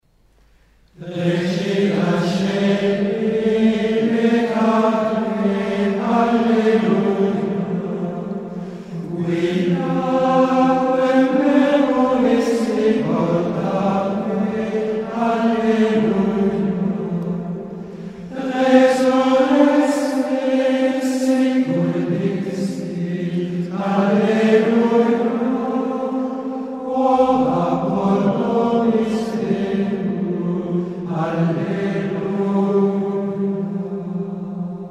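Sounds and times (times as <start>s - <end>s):
Easter antiphon after Compline: 1.0s - 34.8s.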